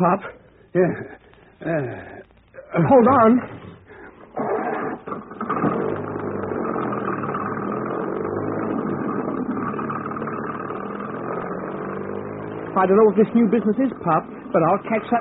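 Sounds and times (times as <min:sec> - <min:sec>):
speech: 0:00.0 - 0:03.7, 0:12.8 - 0:15.1
car engine starting, revving and running as car drives off: 0:05.2 - 0:15.1.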